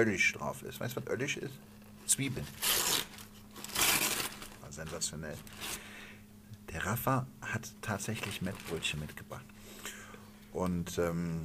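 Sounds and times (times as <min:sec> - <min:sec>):
speech: 0:00.0 - 0:03.0, 0:04.8 - 0:05.8, 0:06.7 - 0:09.6, 0:10.5 - 0:11.4
plastic bag crinkling as it is pulled open: 0:02.3 - 0:05.8, 0:08.0 - 0:09.2.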